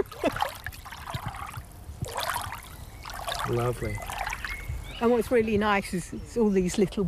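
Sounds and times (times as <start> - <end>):
water trickling and splashing into a garden water trough: 0.0 - 4.9
speech: 3.5 - 4.1, 5.0 - 7.0.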